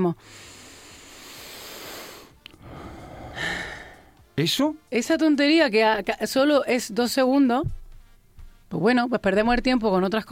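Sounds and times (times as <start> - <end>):
speech: 0.0 - 0.6, 4.4 - 7.8, 8.7 - 10.2
deep breath in and out: 0.2 - 4.2.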